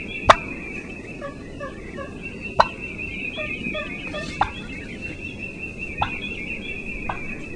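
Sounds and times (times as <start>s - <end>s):
turkey clucking: 0.2s - 5.4s, 6.0s - 6.3s, 7.1s - 7.4s.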